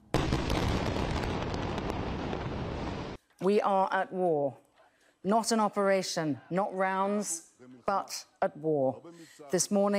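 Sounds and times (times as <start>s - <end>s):
dense continuous roar of rumbling explosions: 0.0s - 3.2s
speech: 3.4s - 4.6s, 5.2s - 9.9s.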